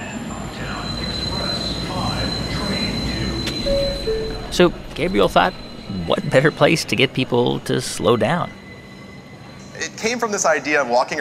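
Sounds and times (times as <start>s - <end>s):
thin high subway train wheel squeal: 0.0s - 10.5s
subway train rumbling through a subway station in Manhattan: 0.0s - 11.1s
speech: 4.6s - 8.6s, 9.8s - 11.1s.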